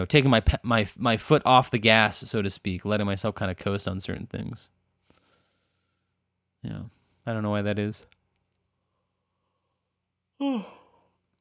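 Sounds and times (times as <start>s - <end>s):
speech: 0.0s - 4.8s, 6.6s - 8.2s, 10.4s - 10.8s
person yawning: 10.4s - 11.0s.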